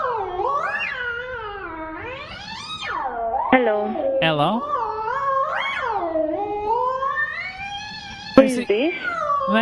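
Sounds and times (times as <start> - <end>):
cat yowling and meowing: 0.0 - 3.2, 4.8 - 9.6
speech: 3.5 - 4.8, 8.4 - 9.6
person calling out: 3.6 - 4.6, 8.4 - 9.6.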